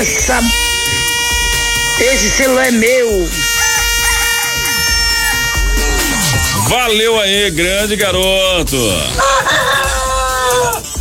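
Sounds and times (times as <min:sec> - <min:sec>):
speech: 0:00.0 - 0:00.7, 0:02.0 - 0:03.5, 0:06.6 - 0:09.6
rooster crowing: 0:03.4 - 0:06.6, 0:09.2 - 0:10.9.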